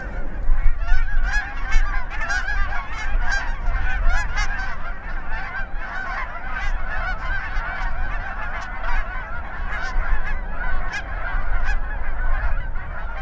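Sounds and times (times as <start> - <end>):
heavy low rumbling: 0.0 - 7.4
Canada geese honking at takeoff: 0.0 - 13.1.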